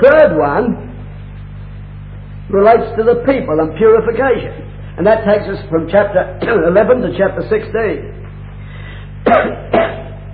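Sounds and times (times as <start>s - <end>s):
steady low hum: 0.0s - 10.3s
speech: 0.1s - 0.9s, 2.5s - 8.2s, 9.3s - 9.9s
person coughing after eating a Brazil nut: 9.2s - 10.3s.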